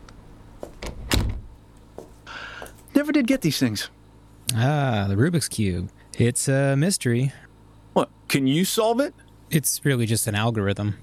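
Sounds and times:
office door pushed shut: 0.8s - 1.5s
speech: 3.0s - 11.0s.

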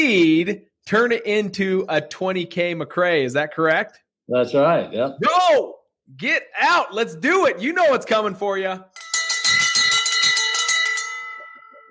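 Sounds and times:
speech: 0.0s - 9.1s
golden bell ringing in celebration: 8.9s - 11.8s.

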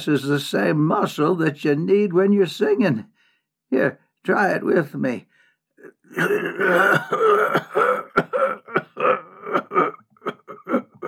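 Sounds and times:
speech: 0.0s - 10.0s
long gravelly throat-clearing rasp: 5.8s - 11.0s
short harsh coughs: 5.8s - 11.0s.

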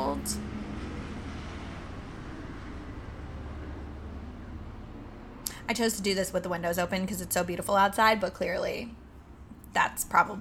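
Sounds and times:
airplane passing overhead heard through an open window: 0.0s - 5.5s
speech: 0.2s - 0.5s, 5.7s - 9.0s, 9.7s - 10.3s.

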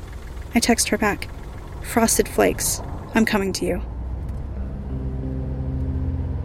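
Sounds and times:
car engine pulling away and driving up a driveway: 0.0s - 6.4s
speech: 0.5s - 3.9s.

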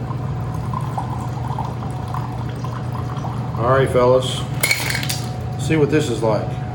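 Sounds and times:
drink pouring into a glass: 0.0s - 3.9s
speech: 3.6s - 4.6s, 5.7s - 6.6s.

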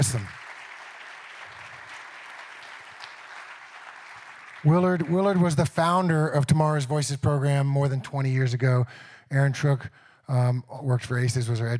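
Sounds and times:
speech: 0.0s - 0.4s, 4.6s - 11.7s
audience applause: 0.0s - 5.6s.

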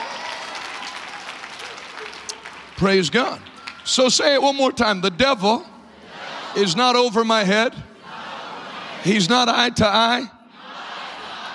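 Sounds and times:
crowd applauding with many hands clapping: 0.0s - 4.1s
speech: 2.8s - 5.7s, 6.6s - 7.9s, 9.0s - 10.4s.

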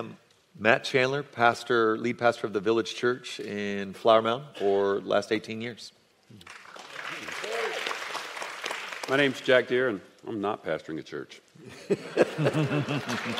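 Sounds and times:
speech: 0.0s - 6.6s, 9.1s - 13.3s
audience applause at a church event: 6.5s - 9.4s, 12.6s - 13.3s
laughter: 11.6s - 13.3s.

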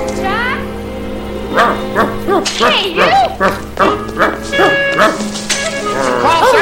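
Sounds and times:
dog giving short yelping barks: 1.5s - 6.6s
speech: 1.6s - 3.9s.

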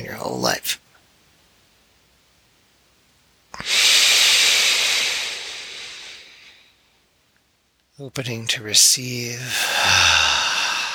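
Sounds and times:
speech: 0.1s - 0.8s, 8.0s - 10.2s
deep exhale during a belly-breathing exercise: 3.6s - 6.8s, 9.5s - 10.9s.

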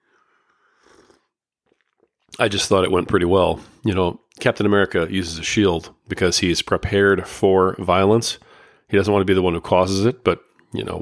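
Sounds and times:
person sipping coffee from a mug: 0.1s - 2.4s
speech: 2.4s - 11.0s.

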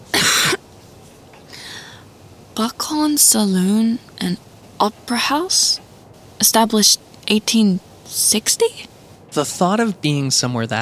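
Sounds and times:
woman's harsh dusty cough: 0.1s - 0.6s
speech: 2.6s - 5.8s, 6.4s - 10.8s.

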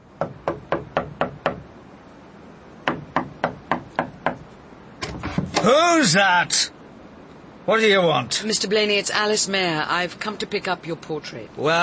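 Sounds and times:
knocking on the wooden door of a cottage: 0.2s - 1.6s, 2.8s - 4.4s
speech: 5.6s - 6.8s, 7.7s - 11.8s.

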